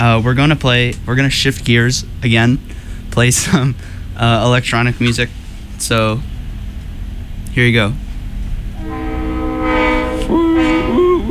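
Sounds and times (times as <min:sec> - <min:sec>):
speech: 0:00.0 - 0:06.3, 0:07.6 - 0:08.0
passing train heavy rolling rumble: 0:00.0 - 0:11.2
passing train multi-tone horn blaring: 0:08.7 - 0:11.2.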